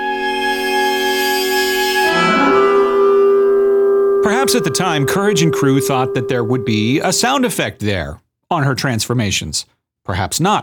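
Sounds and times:
film score cue with sustained held tones: 0:00.0 - 0:07.6
speech: 0:04.4 - 0:10.6.

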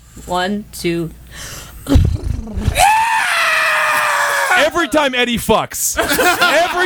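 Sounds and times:
speech: 0:00.2 - 0:02.9, 0:04.6 - 0:06.8
person imitating a horse: 0:01.8 - 0:03.1
person screaming: 0:02.0 - 0:04.9
laughter: 0:06.0 - 0:06.8.

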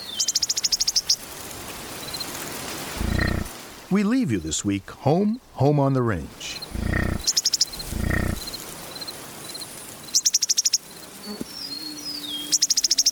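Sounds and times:
faint chirps: 0:03.0 - 0:03.5, 0:06.5 - 0:08.6
insect trilling on windswept prairie grasses: 0:03.0 - 0:03.5, 0:06.6 - 0:08.6
speech: 0:03.9 - 0:06.5
low rumble of wind on prairie: 0:06.7 - 0:08.6.

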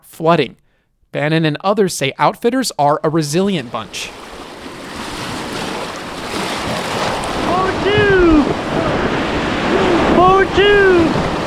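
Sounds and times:
speech: 0:00.1 - 0:04.2, 0:10.5 - 0:11.2
churning whitewater river rapids roaring: 0:03.8 - 0:11.4.

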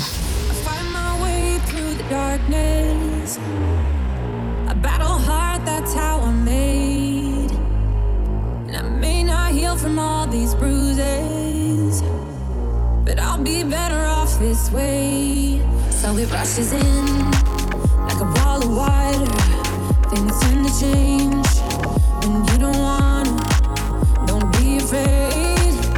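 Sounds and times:
bass in a pop song on the radio: 0:00.0 - 0:25.9
synths in a pop song on the radio: 0:00.0 - 0:25.9
speech: 0:02.1 - 0:04.4, 0:13.4 - 0:17.4, 0:20.1 - 0:23.1
beat in a pop song on the radio: 0:16.6 - 0:25.9.

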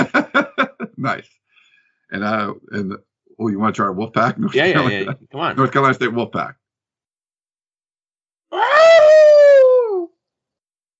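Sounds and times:
laughter: 0:00.0 - 0:01.0, 0:04.2 - 0:05.2
speech: 0:01.0 - 0:01.4, 0:02.1 - 0:06.6
person imitating a wolf howl: 0:08.5 - 0:10.2.

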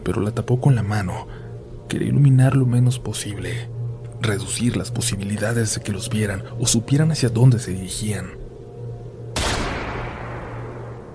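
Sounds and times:
speech: 0:00.0 - 0:08.4
low steady hum: 0:00.0 - 0:11.1
distant gunshot with long rolling echo: 0:09.4 - 0:10.8.

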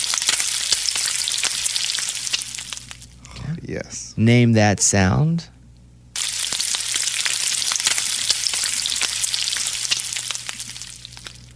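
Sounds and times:
bacon frying in a pan: 0:00.0 - 0:03.1, 0:06.2 - 0:11.5
speech: 0:03.7 - 0:05.6.

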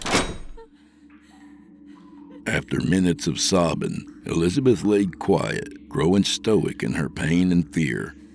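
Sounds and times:
heavy door slamming shut: 0:00.0 - 0:00.7
speech: 0:02.4 - 0:08.2.

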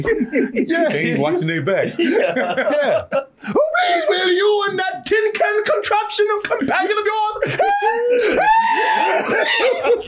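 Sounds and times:
laughter: 0:00.0 - 0:04.5, 0:06.2 - 0:10.0
speech: 0:00.0 - 0:10.0
man screaming loudly with a strained wavering voice: 0:07.0 - 0:10.0.

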